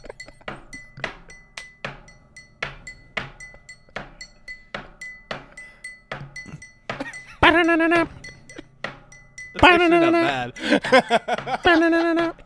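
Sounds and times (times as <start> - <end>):
laughter: 0.0 - 1.4, 6.5 - 8.6, 9.6 - 12.4
rhythmic banging on glass: 0.0 - 12.4
speech: 7.5 - 8.2, 9.6 - 12.4.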